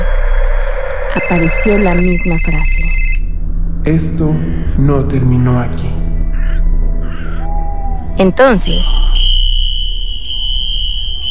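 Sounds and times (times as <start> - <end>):
hospital alarms with high-pitched electronic tone: 0.0 - 3.4, 6.0 - 11.3
low rumble: 0.0 - 11.3
speech: 1.3 - 2.8, 3.9 - 5.9, 8.2 - 9.1.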